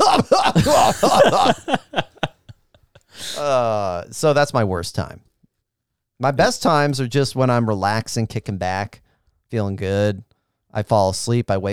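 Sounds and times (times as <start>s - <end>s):
person imitating a man coughing while trying to eat: 0.0s - 2.3s
laughter: 0.0s - 3.8s
speech: 4.2s - 5.3s, 6.2s - 11.7s.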